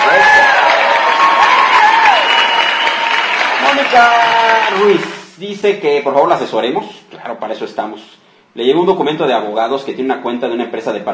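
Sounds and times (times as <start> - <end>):
whistle-like cheering: 0.0 - 3.3
crowd applause sound effect: 0.0 - 5.2
speech: 3.9 - 11.1.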